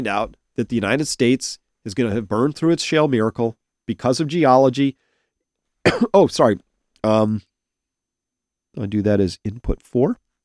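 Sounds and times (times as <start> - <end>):
speech: 0.0 - 5.0, 5.8 - 7.5, 8.8 - 10.2
person coughing: 5.8 - 6.3.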